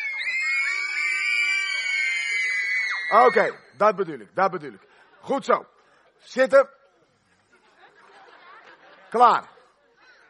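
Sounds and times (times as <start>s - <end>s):
crowd of people screaming: 0.0s - 3.7s
speech: 3.1s - 6.8s, 9.1s - 9.5s
laughter: 7.3s - 10.2s.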